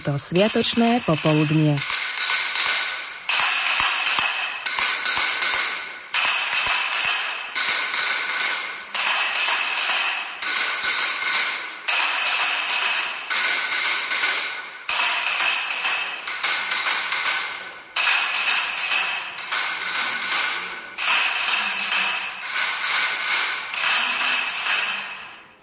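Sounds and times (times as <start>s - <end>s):
speech: 0.0s - 2.0s
wooden clapper rattling in rapid clacking bursts: 0.0s - 25.6s.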